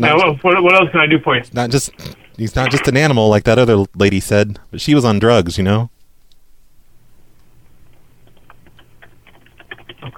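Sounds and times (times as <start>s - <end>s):
speech: 0.0s - 5.9s
low steady hum: 0.0s - 10.1s
typing on a computer keyboard: 8.2s - 10.1s.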